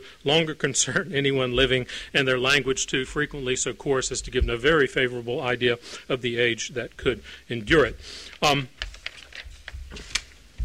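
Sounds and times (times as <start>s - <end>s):
speech: 0.1s - 8.8s
paper pages shuffled by hand: 8.2s - 10.6s.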